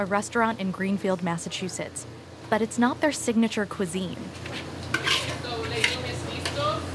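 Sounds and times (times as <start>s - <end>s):
speech: 0.0s - 4.8s
low kitchen hum: 0.0s - 6.9s
metal spoon scraping and scooping food from a wok: 4.3s - 6.8s.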